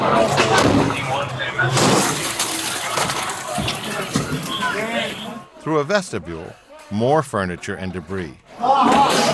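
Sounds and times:
voices of commotion: 0.0 - 9.3
window glass shattering as police break a window of a barricaded hall: 0.4 - 5.3
speech: 5.6 - 9.3.

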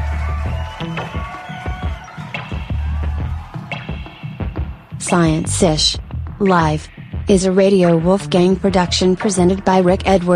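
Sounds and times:
large audience clapping: 0.0 - 4.4
large audience cheering and whooping: 0.0 - 5.4
speech: 5.1 - 10.3.

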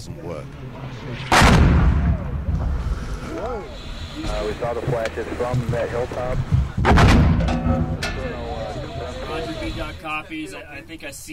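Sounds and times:
speech: 0.0 - 8.6, 9.3 - 11.3
heavy explosions of incoming mortar fire: 1.2 - 3.0, 6.8 - 7.9.

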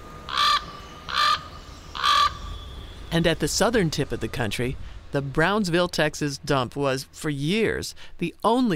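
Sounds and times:
raven croaking calls outdoors: 0.3 - 2.5
speech: 3.1 - 8.7.

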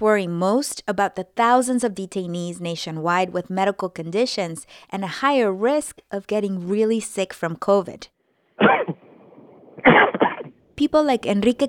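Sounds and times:
speech: 0.0 - 8.9, 9.9 - 11.6
faint hiss: 0.0 - 11.6
harsh raspy coughs: 8.6 - 9.0, 9.8 - 10.6.

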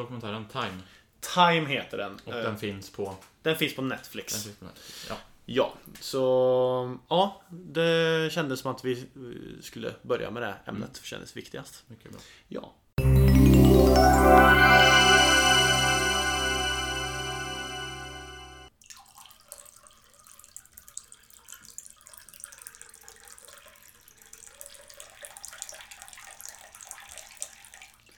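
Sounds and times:
speech: 0.0 - 12.8
loud ringing musical transition sting: 13.0 - 18.7.

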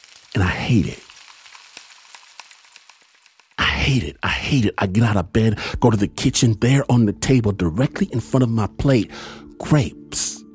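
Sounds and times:
sausages and eggs frying in a pan: 0.0 - 4.3
speech: 0.4 - 1.1, 3.9 - 10.4.

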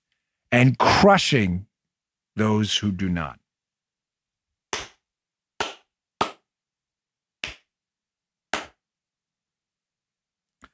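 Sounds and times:
speech: 0.5 - 1.7, 2.4 - 3.4
hand claps for lip-sync test: 4.7 - 5.0, 5.6 - 6.5, 7.4 - 7.7, 8.5 - 8.8.

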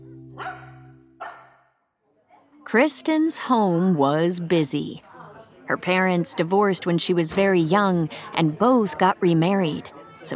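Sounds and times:
high puppy-like barks: 0.4 - 1.7
speech: 2.7 - 5.1, 5.7 - 10.3.

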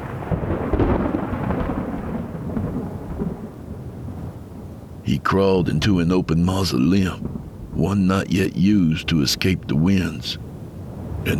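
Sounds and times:
deep rolling thunder: 0.0 - 5.1, 7.1 - 7.8
heavy rain: 0.0 - 11.3
speech: 5.1 - 10.4.

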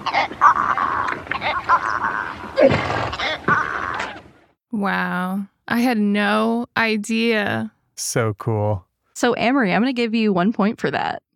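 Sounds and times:
adult zebras barking, braying and chirping: 0.0 - 4.4
speech: 0.1 - 0.6, 1.4 - 3.4, 4.8 - 11.3
adult zebras snorting: 2.6 - 4.2.

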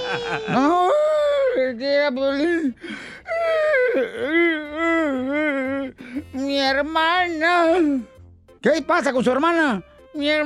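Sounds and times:
laughter: 0.0 - 1.5
person crying and whimpering: 0.0 - 6.5
speech: 0.1 - 1.0, 1.6 - 10.4
shaky gasping breaths: 2.6 - 3.3.

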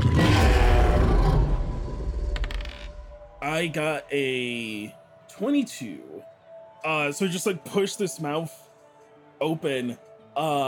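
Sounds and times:
huge rumbling monster roar: 0.0 - 2.4
speech: 3.6 - 8.6, 9.4 - 10.6.

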